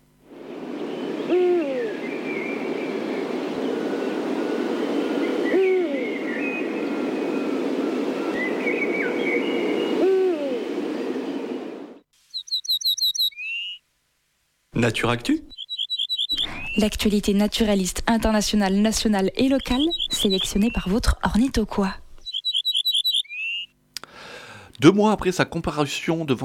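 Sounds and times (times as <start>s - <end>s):
rushing noise: 0.3s - 12.0s, 16.3s - 22.9s
Eurasian eagle-owl hooting at night at the foot of cliffs: 1.2s - 2.7s, 5.4s - 6.6s, 9.9s - 10.7s, 12.4s - 13.8s, 15.5s - 16.9s, 19.4s - 21.0s, 22.2s - 23.7s
high chirping: 12.3s - 13.8s, 15.5s - 17.0s, 19.3s - 21.0s, 22.2s - 23.7s
speech: 14.8s - 15.5s, 16.8s - 22.0s, 24.8s - 26.4s.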